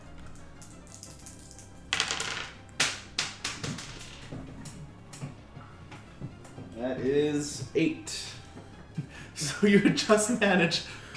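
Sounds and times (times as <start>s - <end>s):
dice clattering across a hard tabletop: 0.3s - 4.4s
speech: 6.8s - 8.2s, 9.4s - 11.0s.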